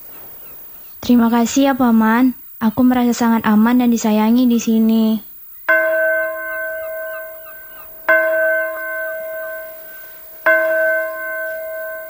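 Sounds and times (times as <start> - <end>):
speech: 1.1 - 5.3
church bell tolling in nearby village: 5.7 - 12.0.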